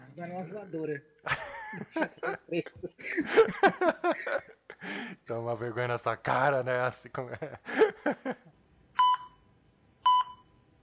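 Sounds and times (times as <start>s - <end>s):
speech: 0.2s - 8.5s
laughter: 1.3s - 5.0s, 7.2s - 8.6s
telephone ringing with short electronic beeps: 9.0s - 10.6s.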